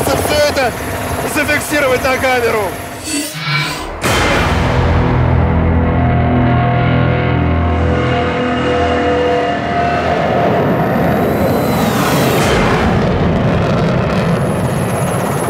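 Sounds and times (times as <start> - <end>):
loud drone of helicopter engines and rotor: 0.0 - 15.4
speech: 0.5 - 3.6
Su-30 fighter jet roaring past below: 2.3 - 15.4.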